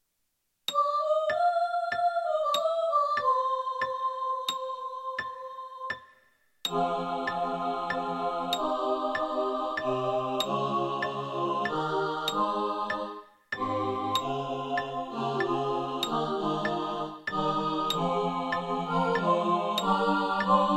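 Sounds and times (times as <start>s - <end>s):
SATB choir singing: 0.7s - 6.0s, 6.7s - 20.7s.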